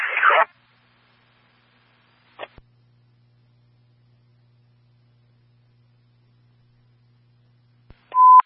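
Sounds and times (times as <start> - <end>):
dispatch radio static burst: 0.0 - 0.6, 2.3 - 2.6
faint low hum: 0.0 - 8.4.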